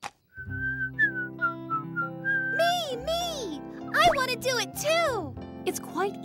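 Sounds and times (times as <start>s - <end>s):
person whistling a short melodic tune: 0.4s - 2.6s
soft instrumental backing music: 0.4s - 6.2s
speech: 4.0s - 6.2s.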